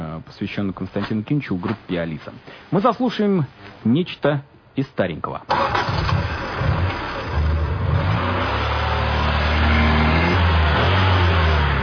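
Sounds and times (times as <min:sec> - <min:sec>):
speech: 0:00.4 - 0:06.2
car engine revving and pulling away: 0:05.5 - 0:11.8.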